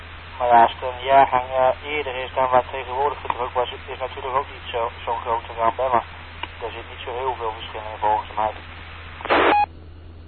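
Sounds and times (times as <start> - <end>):
faint steady hum: 0.0 - 10.2
speech: 0.4 - 8.8
short electronic telephone tone: 9.2 - 9.7.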